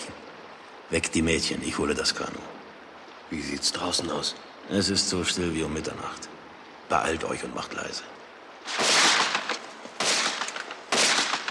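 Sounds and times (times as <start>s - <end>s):
speech: 0.9s - 2.6s, 3.3s - 8.8s
loud sharp gunshot blasts with rumble: 8.6s - 11.4s
scattered smaller pops: 8.7s - 11.4s.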